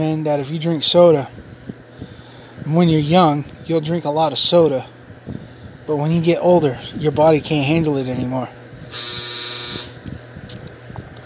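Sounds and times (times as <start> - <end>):
speech: 0.0 - 1.5, 2.6 - 4.9, 5.9 - 9.8
clothes dryer electronic buzzer: 8.9 - 10.0.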